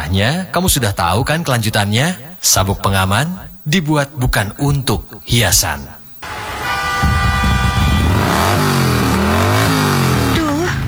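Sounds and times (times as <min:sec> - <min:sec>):
speech: 0:00.1 - 0:06.0
vehicle engine revving: 0:06.2 - 0:10.8.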